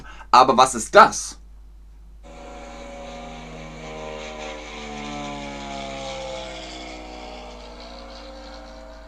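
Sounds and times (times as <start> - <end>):
speech: 0.3 - 1.4
airplane engine droning overhead: 2.3 - 9.0.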